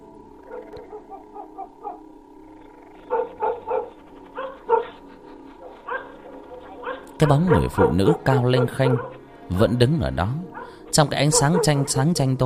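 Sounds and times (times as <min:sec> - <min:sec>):
dog barking inside a house at dusk: 0:00.5 - 0:02.1, 0:03.1 - 0:05.0, 0:05.6 - 0:09.2, 0:10.5 - 0:12.3
speech: 0:01.1 - 0:03.5, 0:07.2 - 0:12.4.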